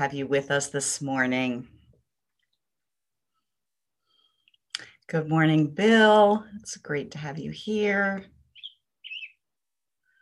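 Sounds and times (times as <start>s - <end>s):
speech: 0.0s - 1.8s, 5.1s - 8.3s
small bird chirping: 8.5s - 9.5s.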